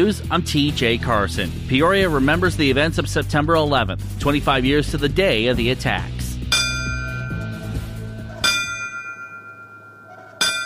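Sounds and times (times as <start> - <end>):
speech: 0.0 - 6.2
ceremonial bells ringing: 6.5 - 10.6.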